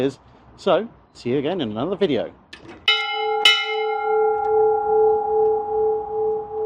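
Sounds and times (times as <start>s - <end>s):
speech: 0.0s - 2.4s
ship's bell struck: 2.9s - 6.6s.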